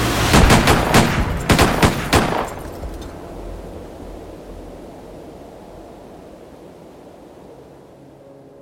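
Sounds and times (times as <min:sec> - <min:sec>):
echo of rifle shots: 0:00.0 - 0:03.0
rifle shots fired in succession: 0:00.3 - 0:02.9.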